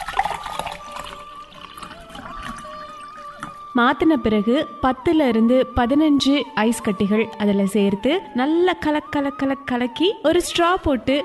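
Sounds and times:
shaken frothy cold coffee poured into a glass tumbler: 0.0s - 1.9s
speech: 3.8s - 11.2s.

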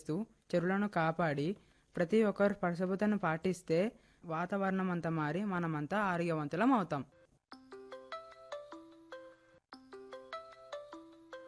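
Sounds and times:
speech: 0.0s - 7.2s
bell-like phone ringtone melody of an incoming call: 7.5s - 11.4s.

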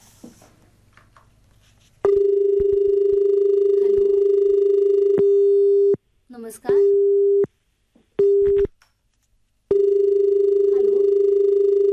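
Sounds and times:
faint noise: 0.0s - 11.9s
telephone line tone of an incoming call: 2.1s - 6.0s, 9.7s - 11.9s.

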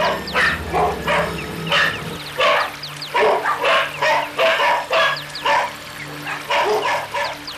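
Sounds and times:
low steady hum: 0.0s - 3.2s
large pack of dogs barking while giving chase: 0.0s - 7.5s.

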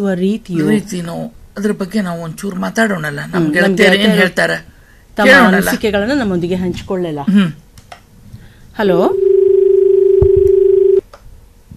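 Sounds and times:
speech: 0.0s - 7.6s, 8.8s - 9.2s
telephone line tone from a call being dialled and connected: 9.1s - 11.0s.

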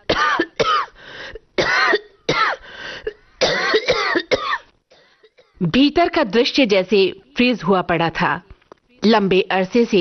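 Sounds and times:
person coughing after inhaling dust: 0.0s - 1.0s, 1.6s - 5.6s
speech: 5.6s - 10.0s.

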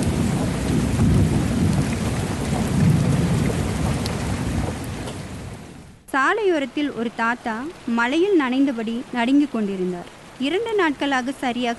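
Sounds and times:
deep thunder rolling and rumbling: 0.0s - 6.0s
steady heavy rain: 0.0s - 11.7s
speech: 6.1s - 11.7s.

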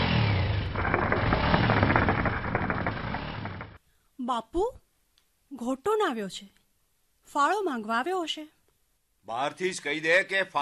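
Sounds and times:
motorcycle engine with silencer removed sputtering: 0.0s - 3.8s
speech: 4.3s - 4.8s, 5.5s - 6.6s, 7.3s - 8.6s, 9.3s - 10.5s.

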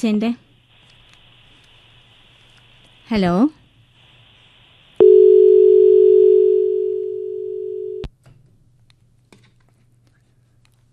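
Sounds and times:
speech: 0.0s - 0.4s, 3.1s - 3.6s
telephone tone after a call was cut off: 5.0s - 8.1s.

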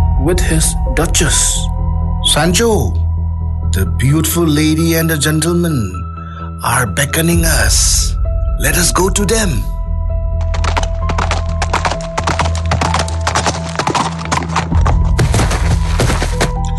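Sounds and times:
speech: 0.2s - 3.0s, 3.7s - 6.0s, 6.6s - 9.7s
horse hooves clip-clopping: 10.4s - 16.6s.

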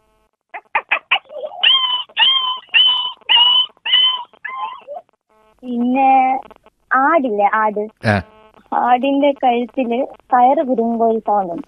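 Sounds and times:
human voice imitating a dog yelping after being struck by a stone: 0.8s - 5.0s
speech: 5.6s - 11.6s.

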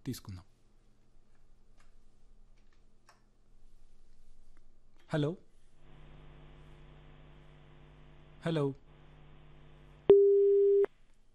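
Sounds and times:
speech: 0.0s - 0.5s, 5.1s - 5.5s, 8.4s - 8.8s
phone line busy-signal beep after a cut-off call: 10.1s - 10.9s.

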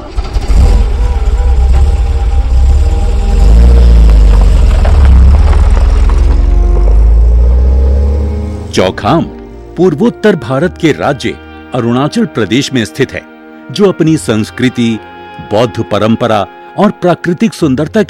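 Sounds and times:
taxi car engine droning with a deep low rumble: 0.0s - 10.0s
speech: 8.8s - 18.0s.

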